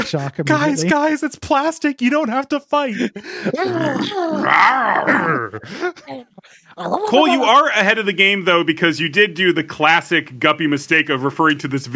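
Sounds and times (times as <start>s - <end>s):
speech: 0.0s - 11.9s
laughter: 2.8s - 4.2s, 6.8s - 7.8s
human voices imitating snarling dog growls: 3.4s - 7.7s.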